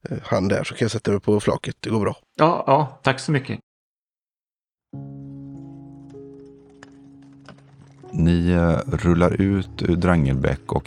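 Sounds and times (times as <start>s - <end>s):
speech: 0.0s - 3.7s, 8.1s - 10.8s
horse-drawn cart hooves clip-clopping: 5.1s - 8.2s.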